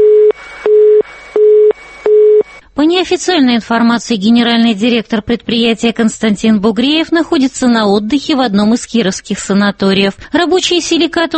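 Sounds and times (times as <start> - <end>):
telephone busy beeps on a factory line cut off for unpaid bills: 0.0 - 2.6
speech: 2.8 - 11.3.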